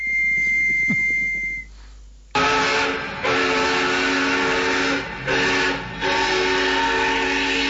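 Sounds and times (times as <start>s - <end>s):
high tone: 0.0s - 1.7s
steam train whistle as the train departs: 2.3s - 7.6s.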